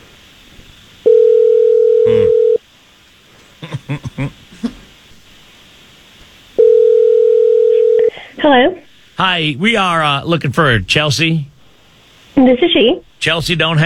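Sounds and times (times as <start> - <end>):
purring ringback tone of an outgoing phone call: 1.1 - 2.6, 6.6 - 8.1
laughter: 3.6 - 4.9
speech: 8.5 - 11.5, 12.4 - 13.8.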